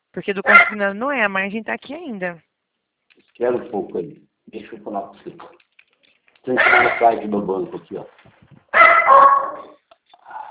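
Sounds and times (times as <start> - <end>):
speech: 0.2 - 2.5, 3.4 - 5.6, 6.4 - 9.7
dog barking: 6.6 - 7.1, 8.8 - 9.8.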